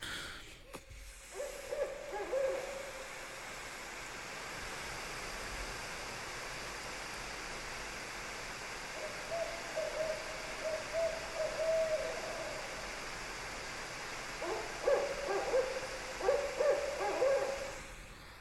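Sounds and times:
steady hiss: 0.0s - 18.3s
barred owls hooting: 1.4s - 3.0s, 9.0s - 12.8s, 14.4s - 17.8s.

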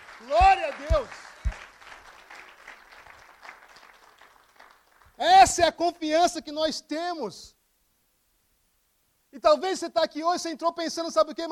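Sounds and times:
audience applauding: 0.0s - 5.2s
speech: 5.5s - 7.6s, 9.4s - 11.4s.

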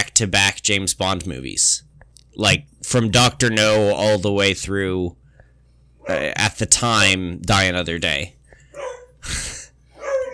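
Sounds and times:
speech: 0.2s - 5.2s, 6.1s - 8.4s
dog barking: 8.8s - 9.2s, 10.0s - 10.3s.

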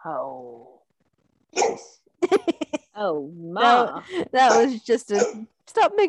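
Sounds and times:
speech: 0.0s - 0.8s, 3.0s - 6.0s
dog barking roughly: 1.5s - 2.0s, 4.5s - 5.5s.

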